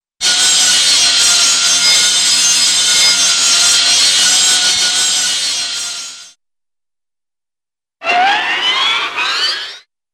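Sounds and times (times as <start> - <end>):
high-pitched electric saw cutting steady, cartoon: 0.2 - 6.4, 8.0 - 9.9.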